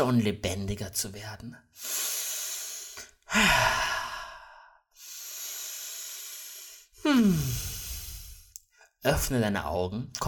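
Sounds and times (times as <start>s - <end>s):
speech: 0.0s - 2.2s, 3.3s - 4.0s, 7.0s - 7.7s, 9.0s - 10.2s
deep energetic breaths during a breathing exercise: 1.8s - 9.0s
loud forceful sighing exhale: 1.9s - 8.5s.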